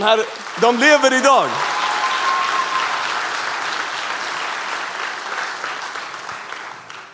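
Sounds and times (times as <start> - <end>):
speech: 0.0 - 1.7
audience applauding: 0.0 - 7.1.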